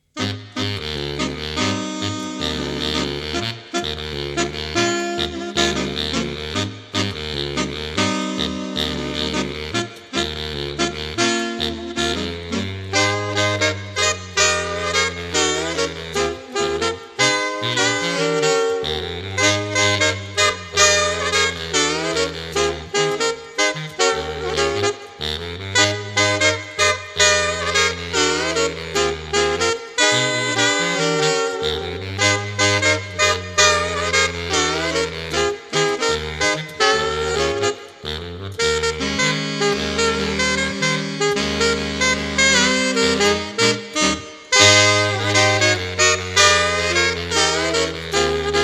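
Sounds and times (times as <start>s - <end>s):
saxophone quartet playing groove: 0.0s - 48.6s.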